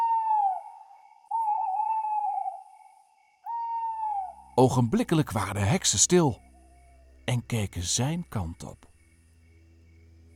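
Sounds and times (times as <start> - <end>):
owl hooting loudly: 0.0 - 7.1
speech: 4.6 - 6.5, 7.3 - 8.9.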